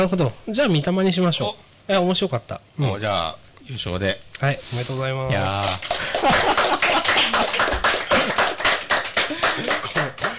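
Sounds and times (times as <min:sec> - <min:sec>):
speech: 0:00.0 - 0:08.0
rapid steady hand clapping: 0:05.6 - 0:10.3
people laughing: 0:05.9 - 0:10.3.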